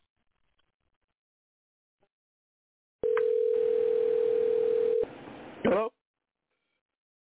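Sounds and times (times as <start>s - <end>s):
electronic phone ring tone: 3.0s - 5.1s
voice: 5.6s - 6.0s.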